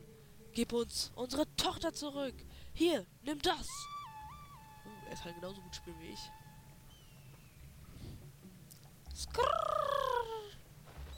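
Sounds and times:
faint hum: 0.0s - 11.1s
speech: 0.6s - 3.9s, 4.8s - 6.4s, 9.2s - 9.7s
eagle cry: 3.8s - 7.1s.

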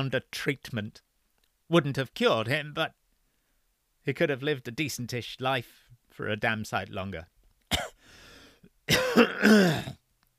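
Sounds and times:
speech: 0.0s - 1.1s, 1.7s - 3.0s, 4.0s - 7.8s, 8.9s - 10.0s
harsh raspy coughing: 7.7s - 8.1s, 8.9s - 10.0s.

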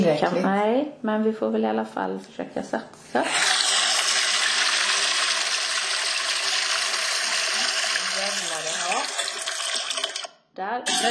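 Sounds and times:
speech: 0.0s - 3.6s, 10.6s - 11.0s
toilet double flush: 3.2s - 10.3s, 10.9s - 11.0s.

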